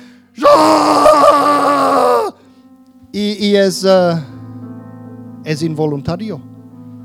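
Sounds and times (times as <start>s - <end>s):
man groaning in pain after hitting his finger with a hammer: 0.4s - 2.4s
speech: 3.1s - 4.3s, 5.5s - 6.5s.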